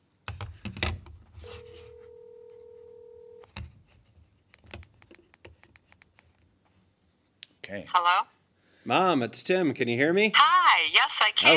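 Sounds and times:
telephone dial tone on speakerphone: 1.4 - 3.5
speech: 7.7 - 11.5.

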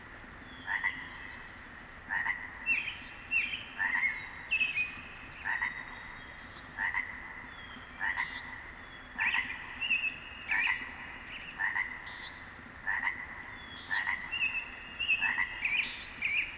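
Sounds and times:
chorus of many distant frogs: 0.6 - 1.5, 2.1 - 16.5.

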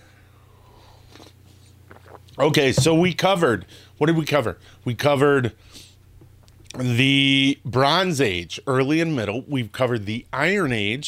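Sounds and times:
quiet hum: 0.0 - 11.0
soft slurping sip of coffee: 0.8 - 2.4
speech: 2.4 - 5.9, 6.8 - 11.0.

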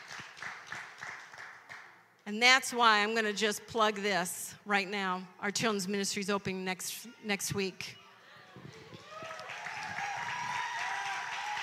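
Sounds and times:
room full of people applauding: 0.0 - 1.9, 8.8 - 11.6
speech: 2.3 - 8.0.

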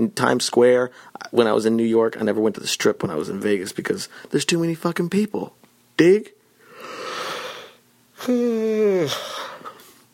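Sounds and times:
speech: 0.0 - 6.4, 8.2 - 9.6
person yawning: 6.8 - 9.8.

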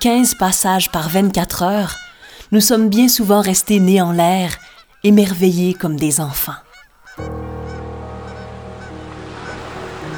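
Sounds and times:
speech: 0.0 - 6.6, 7.2 - 7.6
hundreds of common cranes trumpeting while migrating overhead: 7.2 - 10.1.

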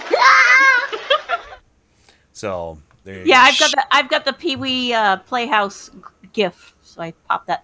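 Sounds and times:
child screaming sound effect: 0.1 - 1.0, 3.3 - 3.8
speech: 2.4 - 7.6.

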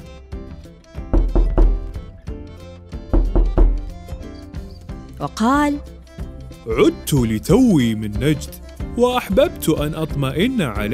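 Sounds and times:
firm knocking on a wooden door: 1.0 - 2.1, 3.0 - 4.1
speech: 5.2 - 6.0, 6.6 - 10.9.

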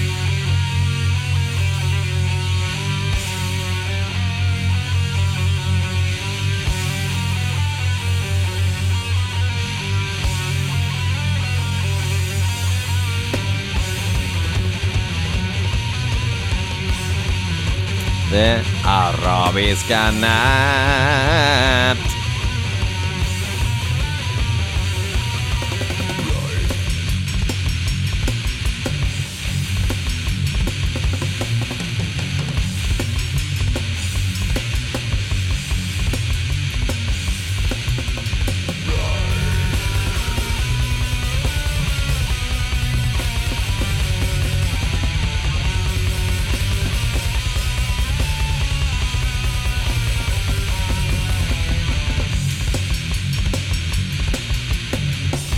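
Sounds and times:
buzzing heavily distorted guitars in old-school gore grind metal: 0.0 - 55.5
speech: 19.6 - 22.1.

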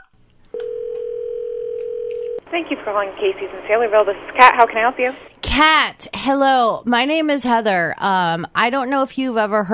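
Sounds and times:
steady continuous telephone line tone: 0.5 - 2.4
speech: 2.6 - 9.7.

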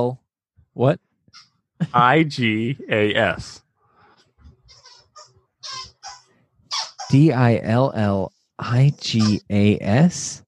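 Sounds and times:
speech: 0.0 - 0.2, 0.8 - 3.6, 7.1 - 10.4
squeaky toy squeaks from a dog chewing: 4.6 - 7.2.

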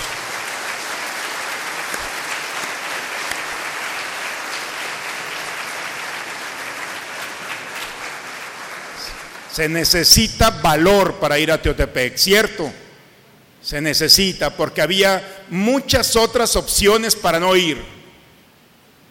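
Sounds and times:
crowd applauding confirmation students: 0.0 - 9.7
speech: 9.6 - 12.8, 13.6 - 18.0.

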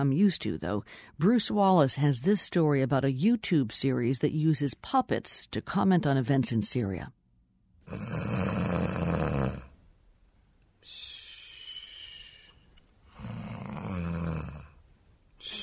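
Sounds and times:
speech: 0.0 - 7.2, 7.9 - 8.5
snoring from a finger puppet: 7.8 - 9.7, 13.1 - 14.8.

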